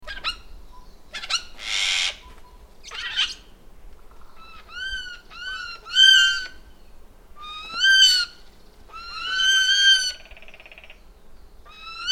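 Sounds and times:
Eurasian jay Garrulus glandarius nasal mewing calls: 1.2 - 3.5, 4.1 - 6.7, 7.4 - 11.0, 11.7 - 12.1.

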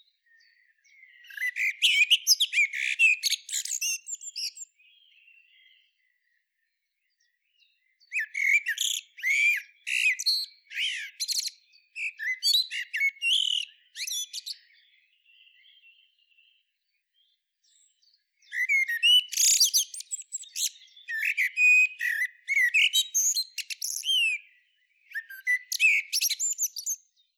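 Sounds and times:
Common blackbird producing rapid high squeaks and twitters: 1.1 - 4.7, 8.1 - 14.7, 18.5 - 24.4, 25.1 - 27.0.

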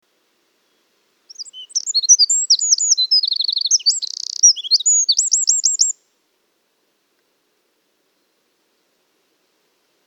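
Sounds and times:
Eurasian wren Troglodytes troglodytes singing: 1.3 - 6.0.

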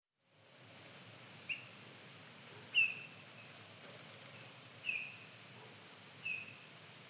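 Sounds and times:
quiet hissing background: 0.2 - 7.0
Eurasian bullfinch Pyrrhula pyrrhula soft mellow whistled notes: 4.9 - 5.2, 6.2 - 6.6.

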